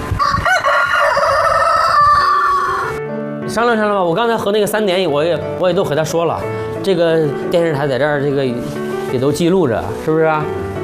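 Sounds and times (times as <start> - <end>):
rooster crowing: 0.2 - 3.0
speech: 3.6 - 10.7.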